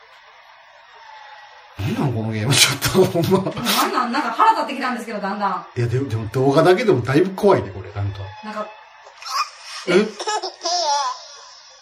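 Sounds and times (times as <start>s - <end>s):
speech: 1.8s - 8.8s, 9.8s - 11.2s
baby laughing in a horror video game: 9.2s - 11.8s.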